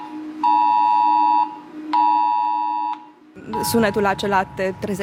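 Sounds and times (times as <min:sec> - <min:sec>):
smartphone air raid alert tone: 0:00.4 - 0:04.6
person talking: 0:03.4 - 0:05.0.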